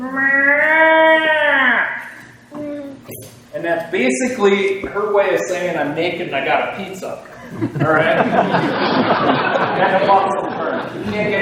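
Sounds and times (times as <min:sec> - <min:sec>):
person imitating a doe deer's breeding bellow: 0:00.0 - 0:03.1
speech: 0:03.7 - 0:11.4
laughter: 0:07.2 - 0:11.4.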